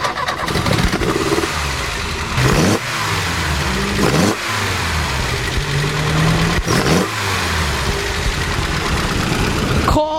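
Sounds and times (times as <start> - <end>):
classic car engine revving: 0.0 - 10.0
sharp bursts of classic car exhaust noise: 0.1 - 9.9.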